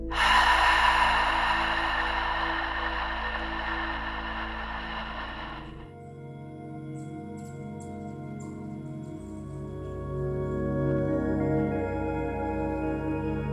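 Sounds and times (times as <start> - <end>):
person breathing in through the nose and out through the mouth during yoga meditation: 0.0 - 6.0
soft sustained music: 0.0 - 13.5.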